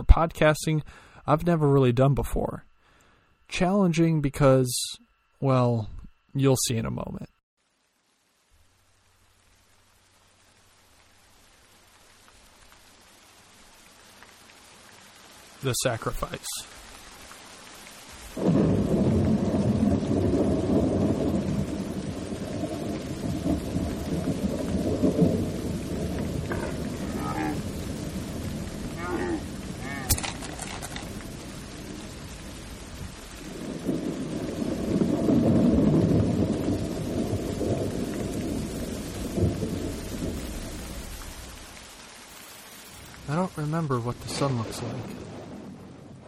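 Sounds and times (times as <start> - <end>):
speech: 0.2 - 2.7, 3.5 - 7.4, 15.6 - 16.8, 43.8 - 45.3
steady heavy rain pouring down: 7.6 - 46.2
deep rolling thunder: 18.2 - 42.0, 44.2 - 46.2.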